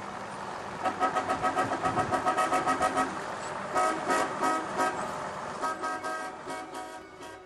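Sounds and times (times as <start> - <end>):
car horn toots: 0.8 - 5.0, 5.6 - 7.4.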